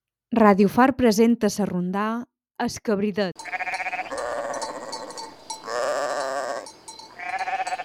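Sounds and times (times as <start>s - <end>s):
speech: 0.4s - 3.7s
goat bleating: 3.4s - 7.8s.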